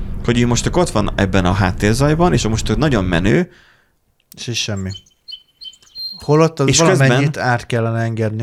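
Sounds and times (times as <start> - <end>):
faint hiss: 0.0 - 8.4
speech: 0.3 - 3.7, 4.3 - 5.1, 6.2 - 8.4
bird chirping: 4.4 - 7.3.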